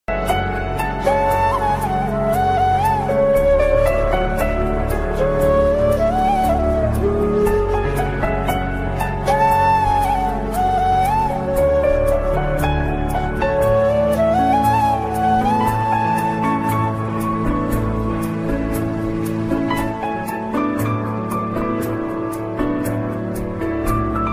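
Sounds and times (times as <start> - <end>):
sad Hindi flute music ringtone: 0.1 - 24.3.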